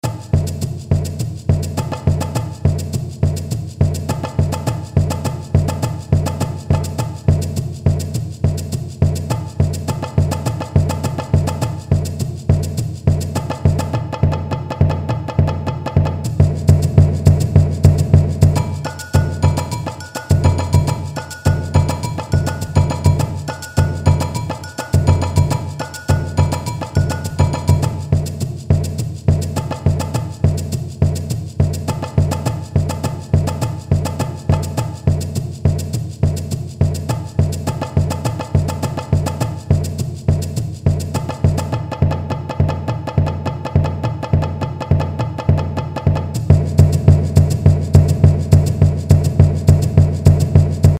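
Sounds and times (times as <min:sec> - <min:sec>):
batucada samba percussion: 0:00.0 - 0:50.9
surdo drum: 0:00.0 - 0:50.9
tamborim: 0:00.0 - 0:50.9.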